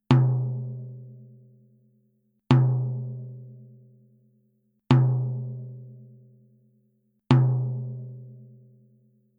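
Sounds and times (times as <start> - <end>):
clear soft tom drum: 0.0 - 1.1, 2.5 - 3.5, 4.9 - 5.8, 7.3 - 8.4.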